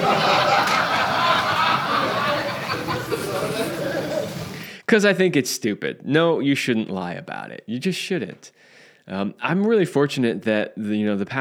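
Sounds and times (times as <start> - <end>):
canned crowd laughter effect played from a soundboard: 0.0 - 4.7
speech: 4.9 - 11.3.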